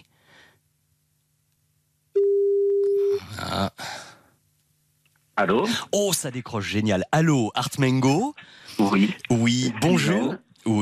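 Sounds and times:
steady telephone line tone while dialing a call: 2.1 - 3.2
speech: 3.6 - 3.9, 5.4 - 10.8.

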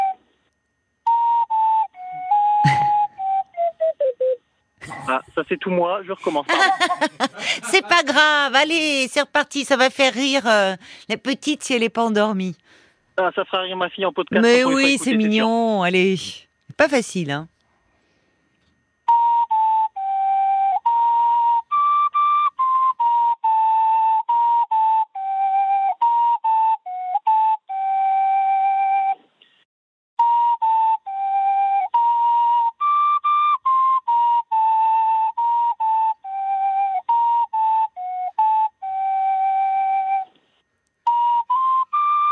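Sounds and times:
ocarina playing a breathy melody: 0.0 - 4.6, 14.4 - 15.8, 19.0 - 29.3, 30.2 - 42.3
laughter: 2.6 - 3.0, 6.1 - 8.2, 14.6 - 15.3
speech: 5.1 - 17.5.

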